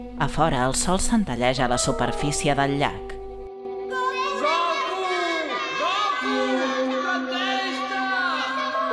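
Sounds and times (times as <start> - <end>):
speech: 0.0 - 3.1
several young voices shouting a name together: 3.9 - 8.9.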